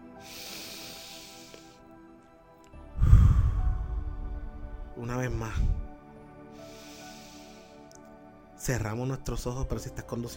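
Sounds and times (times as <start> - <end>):
slow deep breathing in and out during a guided breathing exercise: 0.0 - 2.1, 2.8 - 7.9
speech: 5.0 - 5.8, 8.7 - 10.3.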